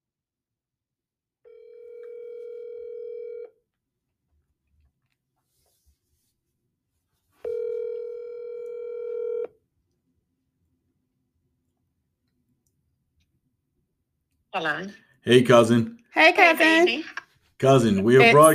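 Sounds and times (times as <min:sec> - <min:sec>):
phone dial tone while placing a call: 0:01.5 - 0:03.6, 0:07.4 - 0:09.6
speech: 0:14.6 - 0:18.5.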